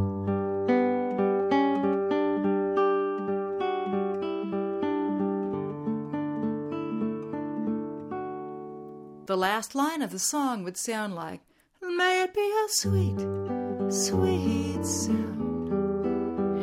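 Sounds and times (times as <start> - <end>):
arpeggiated pattern on a G chord picked on guitar: 0.0 - 9.3, 12.8 - 16.6
speech: 9.3 - 11.4, 12.7 - 15.4.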